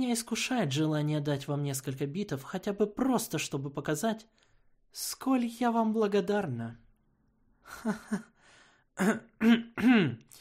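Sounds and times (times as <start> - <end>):
speech: 0.0 - 6.8, 7.7 - 8.3, 9.0 - 10.3
person clearing throat: 9.0 - 10.3.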